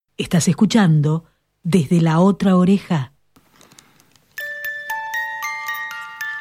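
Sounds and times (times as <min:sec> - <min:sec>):
speech: 0:00.2 - 0:03.1
music box playing a song: 0:04.4 - 0:06.4.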